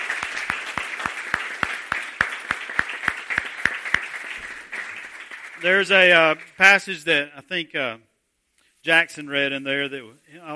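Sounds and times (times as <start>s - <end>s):
crowd applauding: 0.0s - 6.5s
speech: 5.6s - 8.1s, 8.8s - 10.5s.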